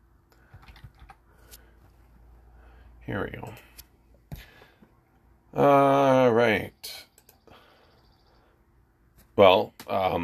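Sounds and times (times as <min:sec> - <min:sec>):
steady low hum: 0:00.0 - 0:10.2
typing on a computer keyboard: 0:00.4 - 0:01.2
speech: 0:03.1 - 0:03.8, 0:05.5 - 0:06.8, 0:09.4 - 0:10.2.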